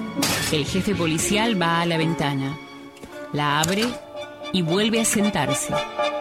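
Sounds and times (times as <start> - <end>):
glass pane struck and partially cracking: 0.2 - 0.6
speech: 0.5 - 2.7, 3.3 - 6.1.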